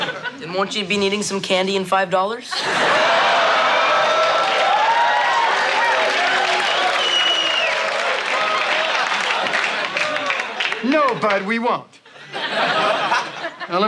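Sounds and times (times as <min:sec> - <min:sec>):
laughter: 0:00.0 - 0:00.7, 0:02.5 - 0:04.6, 0:07.9 - 0:13.8
speech: 0:00.4 - 0:03.2, 0:11.2 - 0:12.0, 0:13.7 - 0:13.8
crowd applauding: 0:02.8 - 0:11.6
scattered cheers: 0:02.9 - 0:10.7.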